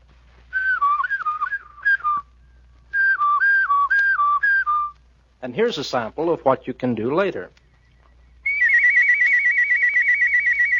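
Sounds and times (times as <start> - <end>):
person whistling a clear steady tune: 0.5 - 2.3, 2.9 - 5.0, 8.4 - 10.7
speech: 5.4 - 7.6.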